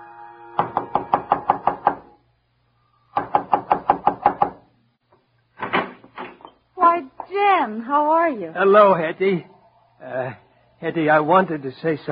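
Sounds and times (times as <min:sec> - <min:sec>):
knocking on a wooden front door of a house: 0:00.6 - 0:02.0, 0:03.2 - 0:04.6
speech: 0:07.6 - 0:12.0.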